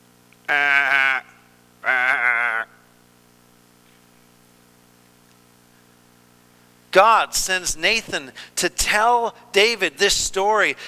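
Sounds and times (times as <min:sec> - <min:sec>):
speech: 0:00.5 - 0:00.9, 0:07.0 - 0:10.8
sheep bleating: 0:00.5 - 0:02.9.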